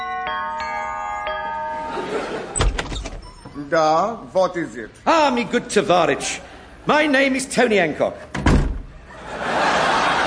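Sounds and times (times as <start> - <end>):
doorbell chiming: 0.0 - 3.6
laughter: 1.4 - 2.8, 9.0 - 10.2
speech: 3.6 - 8.3.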